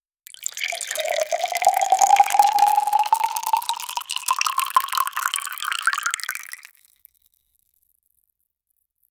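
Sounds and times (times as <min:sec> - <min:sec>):
gentle liquid pouring: 0:00.3 - 0:06.9.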